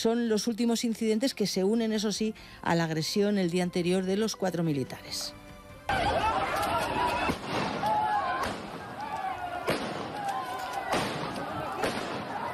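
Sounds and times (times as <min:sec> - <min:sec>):
speech: 0:00.0 - 0:07.0
crowd shouting and clamoring in the street: 0:05.9 - 0:12.5
sharp warning gunshots in the street: 0:05.9 - 0:12.5.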